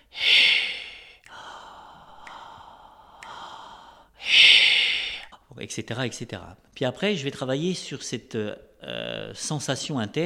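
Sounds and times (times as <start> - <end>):
breathing exercise with inhale and exhale: 0.0 - 5.4
faint clicks: 2.0 - 3.5
speech: 5.6 - 10.2.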